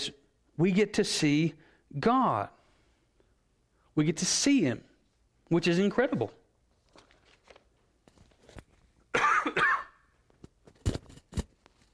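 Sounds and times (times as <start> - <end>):
speech: 0.0 - 2.6, 4.0 - 4.9, 5.5 - 6.4
person coughing harshly: 9.1 - 10.1.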